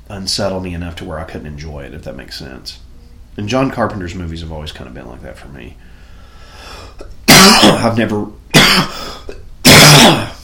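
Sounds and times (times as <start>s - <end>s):
speech: 0.1s - 6.0s, 7.8s - 9.0s
harsh chesty coughs: 6.9s - 10.4s.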